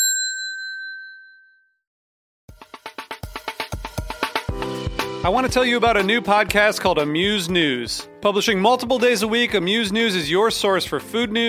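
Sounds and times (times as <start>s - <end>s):
single clear bell ding: 0.0s - 1.8s
rhythmic bright instrumental music with sharp repeated hits: 2.5s - 11.4s
speech: 5.2s - 11.4s.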